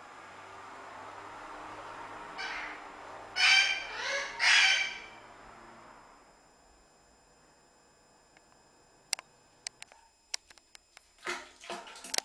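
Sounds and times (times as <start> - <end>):
parrot squawking: 2.4 - 5.2.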